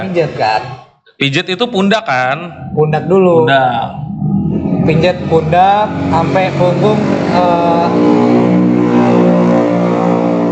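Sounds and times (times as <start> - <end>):
speech: 0.0 - 4.0, 4.8 - 8.2
motorcycle engine revving: 2.6 - 10.5.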